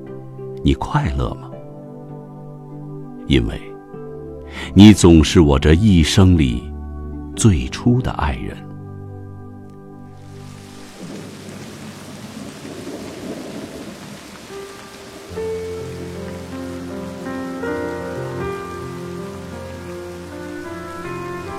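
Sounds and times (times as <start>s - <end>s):
soft sustained music: 0.0s - 21.5s
speech: 0.6s - 1.5s, 3.3s - 3.7s, 4.5s - 6.7s, 7.4s - 8.7s
rain falling on a winter night: 10.2s - 21.5s.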